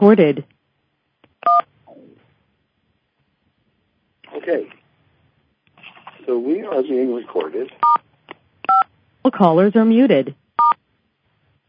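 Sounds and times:
speech: 0.0s - 0.6s, 4.3s - 4.8s, 6.3s - 8.0s, 8.8s - 10.8s
telephone keypad tone while entering a PIN: 1.4s - 1.6s.

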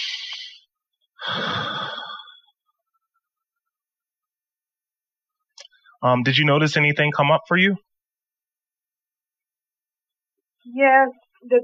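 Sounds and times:
deep breath in and out during a guided tapping session: 1.2s - 2.6s
speech: 6.0s - 7.9s, 10.7s - 11.6s.

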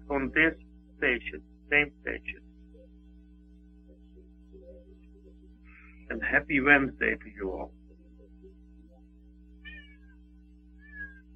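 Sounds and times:
steady low electrical hum: 0.0s - 11.3s
speech: 0.1s - 2.4s, 6.1s - 7.8s
cat meowing: 9.6s - 10.2s, 10.8s - 11.3s.

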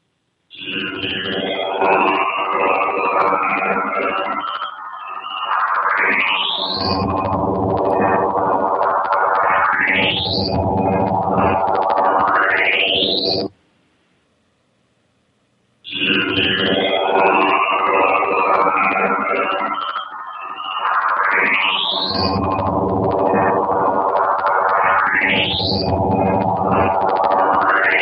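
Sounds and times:
radio signal raised in pitch by 12 tones in Cool Edit Audio Editor: 0.5s - 13.5s, 15.9s - 28.0s.

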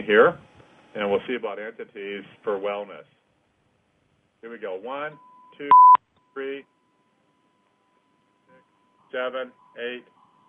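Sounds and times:
speech: 0.0s - 3.2s, 4.4s - 6.7s, 9.1s - 10.2s
brief louder beep: 5.2s - 6.0s
steady telephone-like tone on a phone line: 5.3s - 6.0s.

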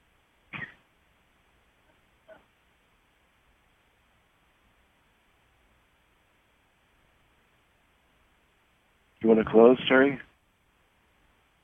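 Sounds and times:
person coughing, faint and muffled: 0.5s - 0.8s
speech: 9.2s - 10.3s.

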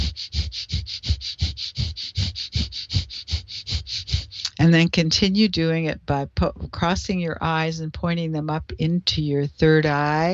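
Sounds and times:
rapid panting breaths through the nose: 0.0s - 4.6s
speech: 4.6s - 10.3s.

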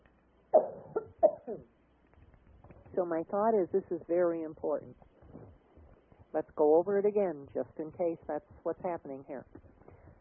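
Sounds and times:
person coughing: 0.6s - 1.7s
speech: 3.0s - 5.1s, 6.3s - 9.6s.

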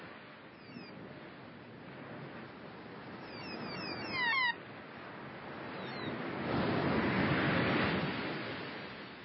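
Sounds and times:
ocean surf: 0.0s - 9.2s
seabirds chirping: 0.6s - 0.9s, 3.2s - 4.6s.

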